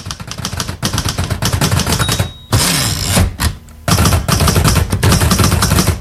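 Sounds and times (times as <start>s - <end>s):
old mechanical typewriter keys clacking: 0.0s - 5.9s
typewriter bell ding: 1.7s - 3.2s.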